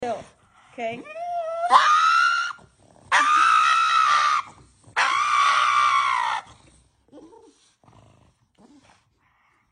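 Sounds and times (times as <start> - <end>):
pug screaming: 1.5 - 6.5.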